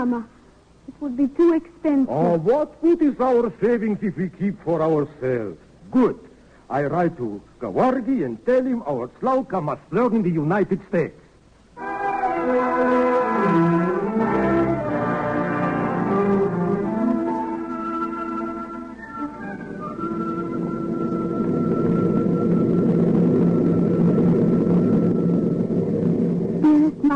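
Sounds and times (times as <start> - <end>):
speech: 0.0 - 11.2, 11.8 - 13.1
aeroplane engine droning in flight: 11.7 - 27.1.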